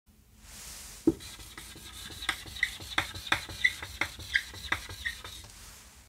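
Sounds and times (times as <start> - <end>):
marker writing on a whiteboard: 1.1 - 5.5.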